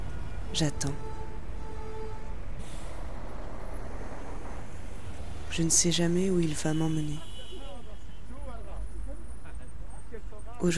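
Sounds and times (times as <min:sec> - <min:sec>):
heavy bus engine rumbling: 0:00.0 - 0:10.7
speech: 0:00.5 - 0:01.1, 0:05.6 - 0:07.3, 0:10.6 - 0:10.7
bus air brakes releasing with a sharp hiss: 0:02.6 - 0:04.4.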